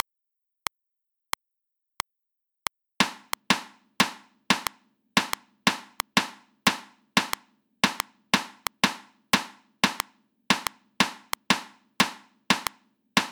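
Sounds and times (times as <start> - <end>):
reversed sixteenth-note rhythms at 90 bpm: 3.0 - 13.3.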